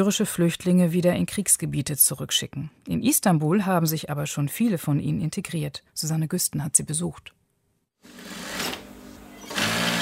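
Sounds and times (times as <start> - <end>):
speech: 0.0 - 7.4
sewing machine humming while sewing a seam on a sofa cover in an upholstery workshop: 8.0 - 9.9.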